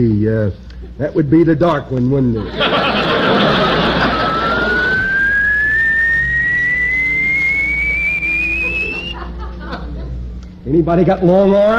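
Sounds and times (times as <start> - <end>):
speech: 0.0 - 3.8, 10.7 - 11.7
car lift raising a car on a rack: 0.0 - 11.7
laughter: 2.3 - 5.2, 8.4 - 10.3.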